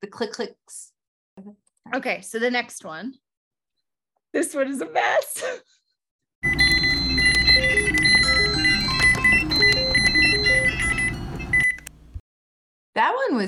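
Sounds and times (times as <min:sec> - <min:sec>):
speech: 0:00.0 - 0:03.2, 0:04.3 - 0:05.8, 0:13.0 - 0:13.4
many household appliances beeping and chiming at once: 0:06.4 - 0:12.2.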